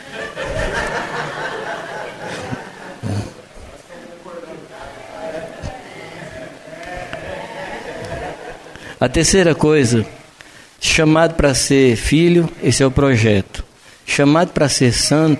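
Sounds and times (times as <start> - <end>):
laughter: 0.0 - 9.6
several sheep bleating: 4.8 - 8.5
speech: 9.0 - 10.2, 10.8 - 15.3.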